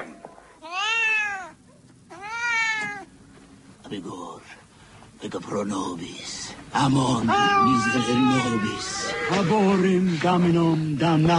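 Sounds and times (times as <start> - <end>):
cat meowing: 0.6 - 3.1, 7.0 - 9.4
speech: 3.9 - 4.6, 5.2 - 11.3.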